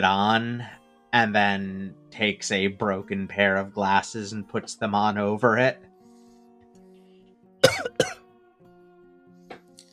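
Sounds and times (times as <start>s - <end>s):
speech: 0.0s - 5.9s
person coughing after inhaling vape: 7.6s - 8.2s.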